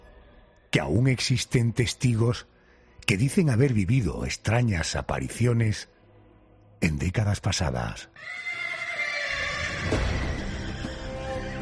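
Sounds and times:
speech: 0.7 - 2.5, 3.1 - 5.9, 6.8 - 8.4
horse neighing: 8.2 - 11.1.

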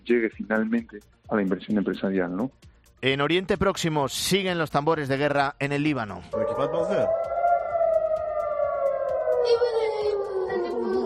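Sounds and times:
speech: 0.1 - 7.3, 9.4 - 9.8
air raid siren wailing in Israel: 6.3 - 11.0.

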